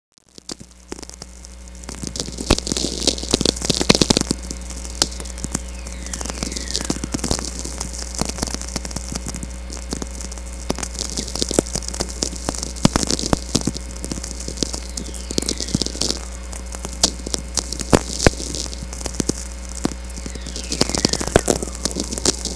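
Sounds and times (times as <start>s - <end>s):
whistler natural VLF radio emission: 1.2s - 22.5s.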